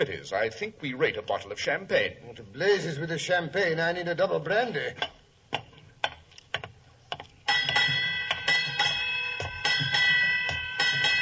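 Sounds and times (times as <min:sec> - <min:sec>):
speech: 0:00.0 - 0:05.2
ship's bell striking eight bells: 0:07.5 - 0:11.2.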